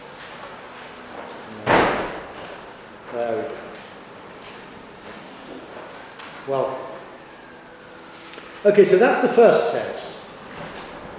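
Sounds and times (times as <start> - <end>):
outer door slamming shut: 1.6 - 2.6
speech: 6.5 - 6.9, 8.6 - 10.2.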